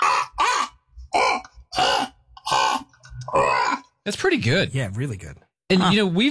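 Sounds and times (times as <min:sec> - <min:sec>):
person's voice imitating harsh raspy crow caws: 0:00.0 - 0:04.0
speech: 0:04.1 - 0:06.2.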